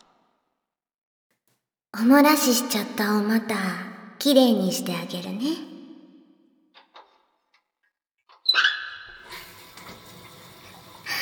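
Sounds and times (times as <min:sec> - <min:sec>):
speech: 0:02.0 - 0:05.7
knock or squeak: 0:08.3 - 0:09.2
shower water spraying: 0:09.2 - 0:11.2.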